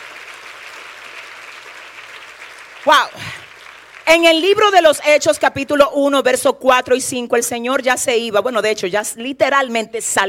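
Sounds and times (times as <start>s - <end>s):
church congregation applauding during a sermon: 0.0s - 4.8s
speech: 2.8s - 3.4s, 4.1s - 10.2s.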